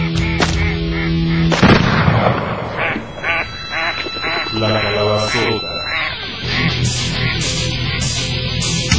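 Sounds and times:
flock of ducks quacking: 0.0s - 1.6s, 2.7s - 8.9s
shotgun blasts: 1.5s - 2.8s.

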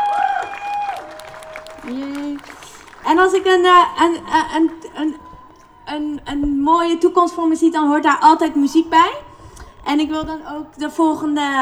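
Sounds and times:
crowd applauding at a climate protest blocking the A12 motorway: 0.0s - 6.2s
speech: 1.9s - 5.2s, 5.9s - 9.2s, 9.8s - 11.5s.

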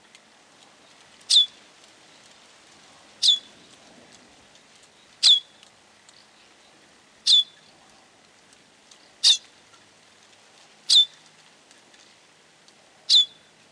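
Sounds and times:
bird chirping: 1.3s - 1.6s, 3.2s - 3.6s, 4.9s - 7.7s, 9.2s - 9.5s, 10.9s - 11.2s, 13.1s - 13.5s.

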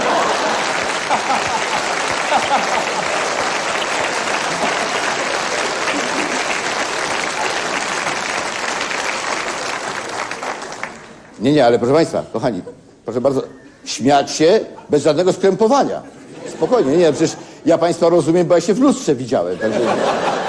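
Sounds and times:
laughter: 0.0s - 8.3s, 16.0s - 17.5s, 19.5s - 20.4s
audience applauding a man at a live event: 0.0s - 11.4s
speech: 2.5s - 3.4s, 11.4s - 20.4s.

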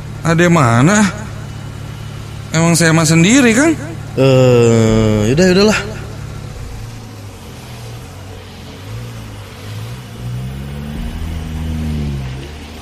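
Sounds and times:
speech: 0.2s - 1.2s, 2.6s - 6.0s
minibus engine revving: 2.8s - 12.8s.

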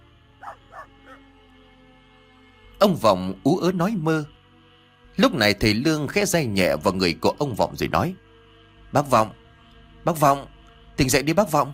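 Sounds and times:
dog barking while digging under a mango tree: 0.4s - 1.2s
speech: 2.8s - 4.4s, 5.2s - 8.2s, 8.9s - 9.4s, 10.0s - 11.7s.

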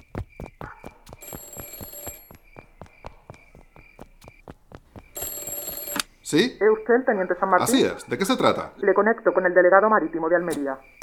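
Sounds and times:
office telephone ringing with a bell-like trill: 1.2s - 2.4s, 5.1s - 10.8s
speech: 6.3s - 11.0s.

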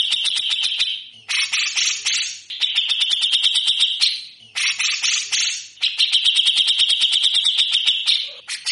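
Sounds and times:
grey-cheeked bulbul harsh rattling song: 0.0s - 8.7s.

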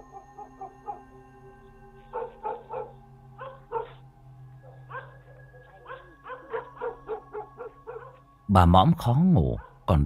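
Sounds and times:
two dogs barking loudly at night: 0.0s - 1.1s, 2.0s - 8.3s, 9.6s - 9.9s
speech: 8.5s - 10.0s.

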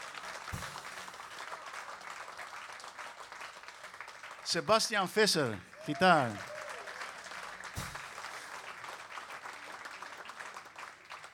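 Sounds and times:
audience applause at a jazz concert: 0.0s - 11.3s
speech: 4.5s - 6.5s
brief thump: 7.8s - 8.2s.

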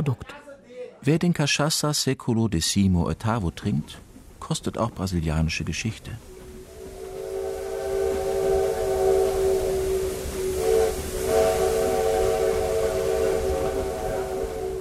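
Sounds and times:
speech: 0.0s - 6.3s
small steam train whistle near Tiradentes in Brazil: 6.2s - 14.7s.

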